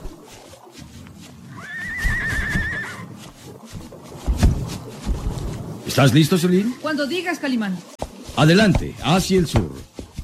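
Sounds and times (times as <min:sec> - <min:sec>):
rumbling noisy outdoor background: 0:00.0 - 0:10.2
horse neighing with high-pitched whinny: 0:01.5 - 0:03.1
dull thuds: 0:03.6 - 0:05.8, 0:08.0 - 0:10.2
speech: 0:06.0 - 0:09.9.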